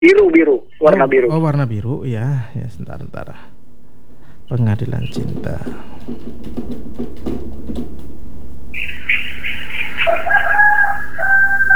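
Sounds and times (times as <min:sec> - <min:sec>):
speech: 0:00.1 - 0:03.6, 0:04.5 - 0:08.1, 0:08.7 - 0:09.1
low noise: 0:00.5 - 0:11.7
rooster crowing: 0:05.7 - 0:11.7.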